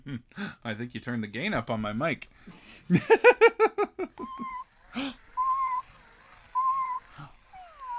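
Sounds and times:
speech: 0.1s - 5.2s
battery-powered toy cat walking with short synthetic meows: 4.3s - 7.9s.

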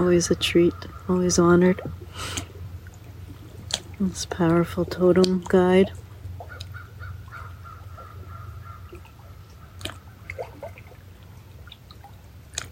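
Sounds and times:
raven croaking while flying over: 0.0s - 2.0s, 6.4s - 10.6s
steady low outdoor rumble: 0.0s - 12.7s
speech: 0.1s - 2.5s, 4.0s - 6.0s.

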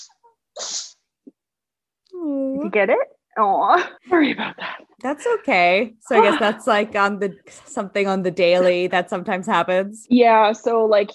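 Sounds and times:
male dog with extra mucus sneezing: 0.0s - 1.1s
speech: 2.2s - 11.1s.

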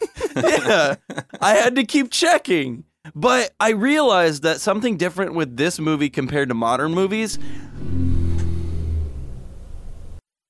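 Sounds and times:
laughter: 0.0s - 1.5s
speech: 0.4s - 7.7s
motorcycle rumbling past outside: 7.4s - 10.2s.

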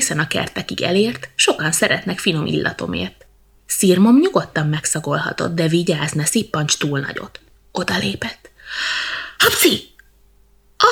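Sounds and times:
speech: 0.0s - 9.9s
breathy intake before a sneeze: 8.6s - 9.4s
person sneezing: 9.4s - 9.9s.

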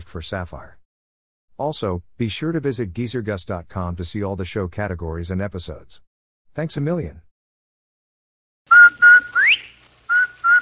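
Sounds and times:
speech: 0.1s - 0.8s, 1.6s - 6.0s, 6.6s - 7.3s
whistled advertising jingle: 8.7s - 10.6s.

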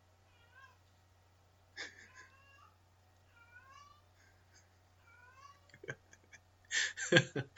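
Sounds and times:
female cat meowing after catching a mouse: 0.3s - 0.8s, 2.0s - 4.1s, 5.0s - 5.8s.

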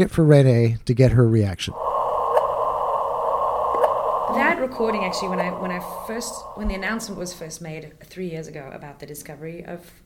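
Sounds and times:
speech: 0.0s - 1.8s, 4.3s - 10.0s
gravitational-wave chirp from two black holes colliding: 1.7s - 7.4s
droning hum: 1.7s - 7.5s.

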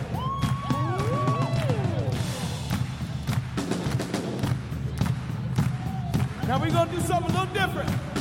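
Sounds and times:
people whooping and shouting: 0.0s - 2.6s, 5.6s - 6.5s
large crowd clapping rhythmically for a morning war cry: 0.0s - 8.1s
speech: 6.6s - 8.1s.

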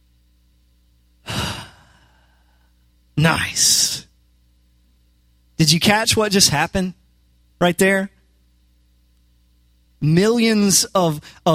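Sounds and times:
deep breath in and out: 1.2s - 2.8s
speech: 3.2s - 4.0s, 5.6s - 7.0s, 7.6s - 8.1s, 10.0s - 11.5s.

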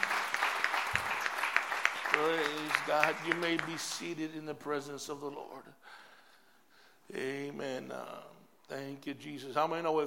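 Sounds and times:
audience applause: 0.0s - 4.0s
speech: 2.2s - 6.0s, 7.1s - 10.0s.

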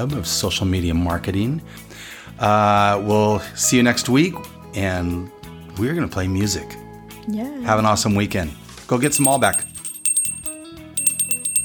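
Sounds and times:
speech: 0.0s - 9.7s
bicycle bell ringing: 9.0s - 11.6s.

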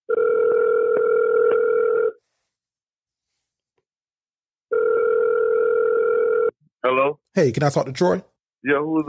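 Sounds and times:
telephone ringback tone on an outgoing call: 0.1s - 2.2s, 4.7s - 6.5s
speech: 6.9s - 9.0s.

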